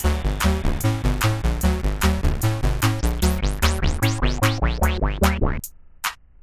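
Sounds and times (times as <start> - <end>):
electronic beat: 0.0 - 5.7.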